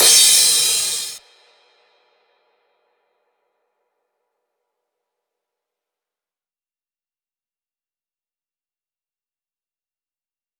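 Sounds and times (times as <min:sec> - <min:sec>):
cymbals: 0:00.0 - 0:01.2
whip crack: 0:00.0 - 0:01.2.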